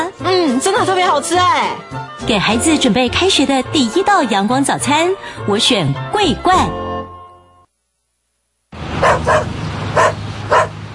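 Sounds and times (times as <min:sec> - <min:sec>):
speech: 0:00.2 - 0:06.8
small dog barking in high-pitched yips: 0:09.0 - 0:10.8.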